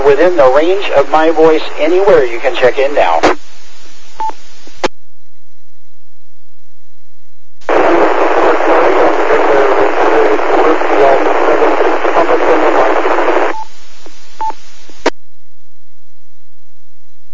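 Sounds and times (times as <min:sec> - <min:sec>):
abrupt radio squelch cutoffs: 0:00.0 - 0:03.4, 0:07.6 - 0:15.2
harsh hissy amateur radio static: 0:00.0 - 0:04.9, 0:07.6 - 0:15.2
speech: 0:00.1 - 0:03.5.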